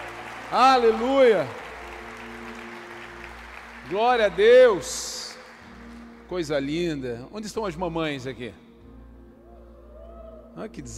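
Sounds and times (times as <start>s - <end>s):
large crowd applauding: 0.0s - 7.0s
speech: 0.5s - 1.6s, 3.9s - 5.1s, 6.3s - 8.6s, 10.6s - 10.9s.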